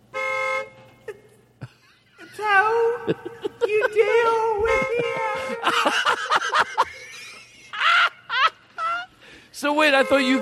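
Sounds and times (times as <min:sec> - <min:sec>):
car horn honking: 0:00.0 - 0:01.1, 0:04.1 - 0:06.0, 0:09.6 - 0:10.4
quiet noise: 0:00.0 - 0:10.4
laughter: 0:01.1 - 0:09.2
speech: 0:03.1 - 0:06.8, 0:09.6 - 0:10.4.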